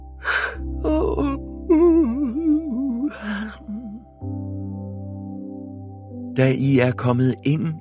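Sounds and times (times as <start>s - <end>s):
person yawning: 0.2s - 4.0s
speech: 6.4s - 7.7s.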